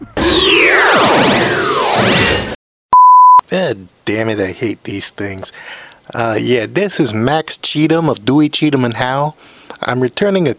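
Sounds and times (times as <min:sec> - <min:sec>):
whoosh transition effect with swirling pitch glides: 0:00.0 - 0:02.6
speech: 0:03.6 - 0:10.5.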